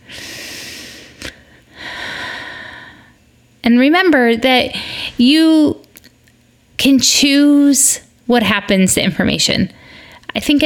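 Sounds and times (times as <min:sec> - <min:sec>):
deep breath: 0:00.0 - 0:03.2
speech: 0:03.7 - 0:05.8, 0:06.8 - 0:10.6.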